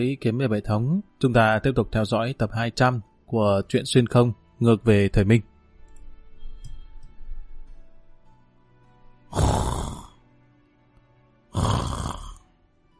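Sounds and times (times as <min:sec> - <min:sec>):
speech: 0:00.0 - 0:05.5
person snoring with low rumbling breaths and harsh snorts: 0:09.3 - 0:10.2, 0:11.5 - 0:12.4.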